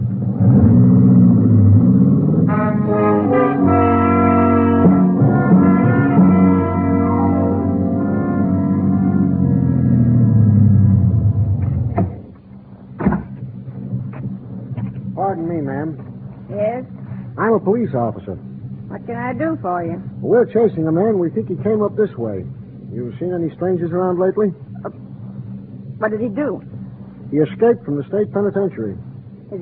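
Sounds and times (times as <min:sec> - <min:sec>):
car engine rumbling as it approaches and pulls in: 0:00.0 - 0:29.6
sharp knocks: 0:13.0 - 0:15.1
speech: 0:17.7 - 0:25.0, 0:26.0 - 0:29.6.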